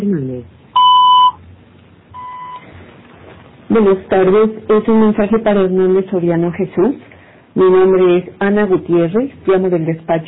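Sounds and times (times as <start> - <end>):
voicemail beep tone: 0.8 - 1.4, 2.2 - 2.7
speech: 3.7 - 10.2.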